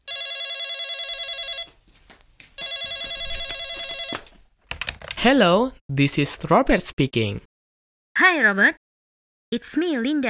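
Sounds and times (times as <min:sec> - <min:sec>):
telephone ringing at a dinner table with warbling electronic tone: 0:00.0 - 0:01.7, 0:02.6 - 0:04.3
speech: 0:05.2 - 0:07.5, 0:08.2 - 0:08.8, 0:09.5 - 0:10.2.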